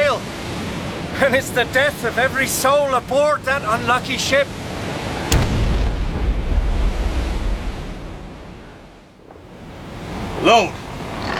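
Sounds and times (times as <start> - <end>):
roar of surf and wind: 0.0 - 11.3
speech: 1.2 - 4.6, 10.4 - 10.8
cannon shot splashing into the sea: 5.3 - 9.2.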